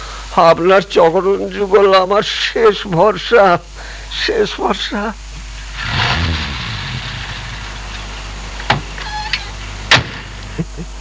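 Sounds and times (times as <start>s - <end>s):
speech: 0.4s - 5.2s
car engine hum of an arriving car: 5.5s - 10.5s
sharp clunks and clicks: 9.9s - 10.4s.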